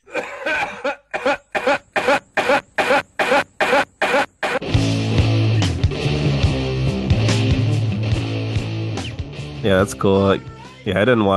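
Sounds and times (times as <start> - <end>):
harsh coughs: 0.0 - 4.7
heavy music with a deep sustained bass line: 4.6 - 10.0
speech: 9.8 - 11.3.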